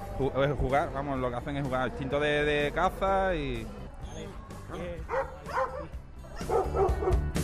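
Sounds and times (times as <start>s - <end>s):
speech: 0.2s - 7.3s
police dog barking during drug search exercise: 5.0s - 7.2s.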